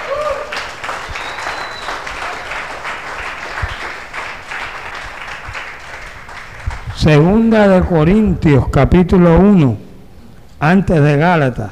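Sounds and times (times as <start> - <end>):
applause from a church congregation: 0.0 - 7.5
speech: 7.0 - 9.8, 10.6 - 11.7.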